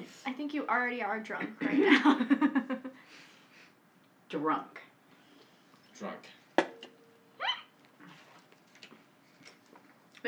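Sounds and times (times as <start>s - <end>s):
speech: 0.4s - 3.3s, 4.3s - 4.8s, 6.0s - 6.4s
soft breathing: 3.0s - 3.8s, 5.1s - 5.9s
hiccup: 7.4s - 7.8s.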